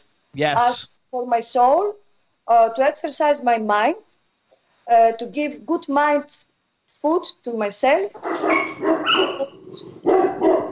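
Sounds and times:
speech: 0.0 - 4.1, 4.9 - 10.6
household dog barking: 8.2 - 10.6.

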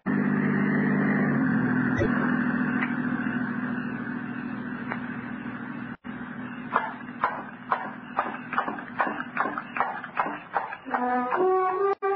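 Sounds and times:
approaching patrol car engine rumbling: 0.0 - 12.0
sharp irregular clicks and knocks: 6.7 - 11.5.

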